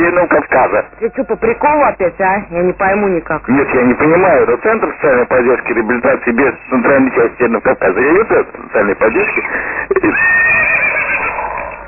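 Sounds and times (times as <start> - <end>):
speech: 0.2 - 10.9
horse neighing: 9.9 - 11.8.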